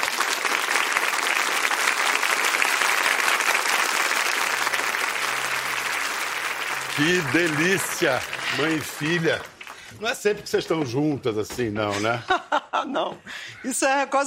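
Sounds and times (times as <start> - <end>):
large audience applause: 0.0 - 10.4
speech: 7.0 - 14.2
laughter: 11.8 - 13.1.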